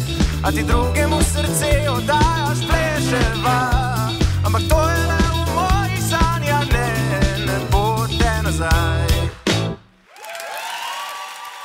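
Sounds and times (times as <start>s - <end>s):
brief burst of music: 0.0s - 9.8s
speech: 0.4s - 3.8s
audience applauding: 10.0s - 11.6s.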